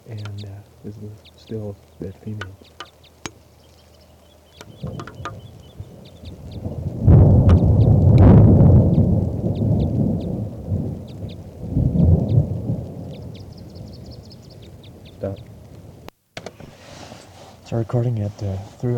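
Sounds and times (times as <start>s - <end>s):
steady patter of rain: 0.0s - 16.2s, 17.6s - 18.9s
speech: 0.1s - 2.8s, 17.8s - 18.9s
heavy thunder from a storm rumbling: 4.6s - 16.1s.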